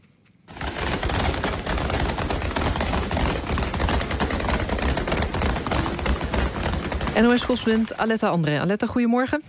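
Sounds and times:
rapid gunfire at a protest: 0.5s - 8.0s
speech: 7.2s - 9.4s.

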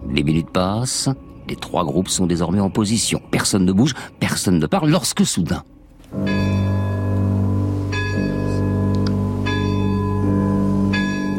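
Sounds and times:
speech: 0.2s - 6.4s
castle's great clock bell striking at midnight: 6.1s - 11.3s.

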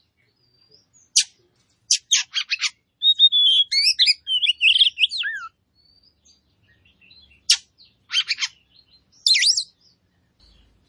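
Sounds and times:
Oriental magpie-robin warbling whistles: 2.2s - 5.5s, 9.2s - 9.7s.

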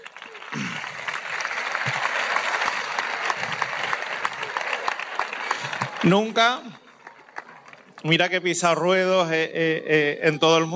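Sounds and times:
audience applause after a horse show at a festival in Ubrique: 0.0s - 8.3s
speech: 6.0s - 6.8s, 8.0s - 10.7s.

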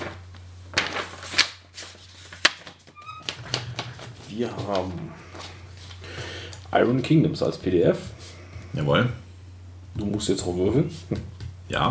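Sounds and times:
new sheet of paper grabbed, rustling and crinkling: 0.0s - 6.1s
speech: 4.4s - 5.2s, 6.7s - 8.2s, 8.8s - 9.2s, 10.0s - 11.8s.

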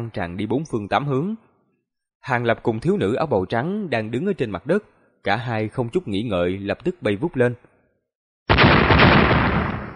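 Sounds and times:
speech: 0.0s - 1.5s, 2.2s - 7.7s
explosion sound effect: 8.5s - 9.9s.

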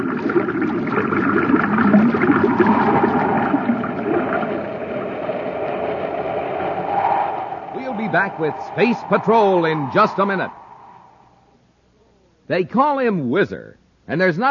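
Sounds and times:
water pumped in gushing forcefully through a pipe: 0.0s - 10.4s
speech: 8.1s - 10.6s, 12.5s - 14.4s.

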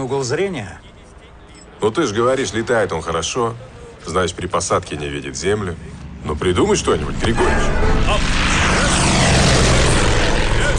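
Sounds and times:
speech: 0.0s - 0.9s, 1.8s - 9.0s
training aircraft propeller engine roaring during aerobatics: 5.9s - 10.7s.

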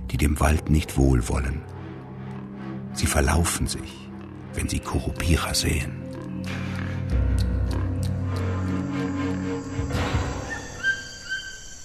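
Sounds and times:
frogs in the Amazon rainforest: 0.0s - 11.8s
low rumble and insect buzz in the Amazon rainforest: 0.0s - 11.8s
speech: 0.1s - 1.7s, 3.0s - 6.6s
crickets in the Amazon rainforest: 0.2s - 11.8s
bird chirps and whistles in the Amazon rainforest: 10.0s - 11.8s
monkeys in the Amazon rainforest: 10.1s - 11.8s.

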